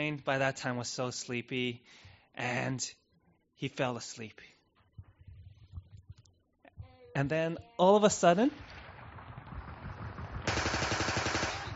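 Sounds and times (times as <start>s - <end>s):
speech: 0.0s - 3.0s, 3.6s - 4.5s, 7.2s - 8.7s
rapid gunfire bursts in a village in Burma at night: 8.5s - 11.7s.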